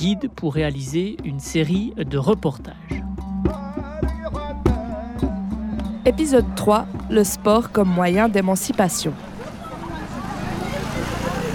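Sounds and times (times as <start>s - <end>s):
speech: 0.0s - 3.6s, 6.1s - 9.3s
indistinct voices murmuring: 4.3s - 11.5s
car and motorbike engines in a busy old medina street: 5.5s - 11.5s.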